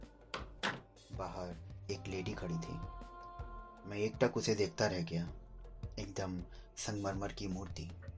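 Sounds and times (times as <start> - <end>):
flat front door clunks and latch clicks: 0.3 - 0.9
speech: 1.2 - 3.0, 3.9 - 8.1.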